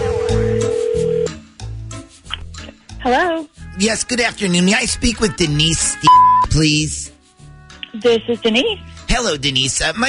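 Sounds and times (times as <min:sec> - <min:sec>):
telephone call ringing tone: 0:00.0 - 0:01.4
speech: 0:00.3 - 0:00.8, 0:03.0 - 0:07.1, 0:08.0 - 0:10.0.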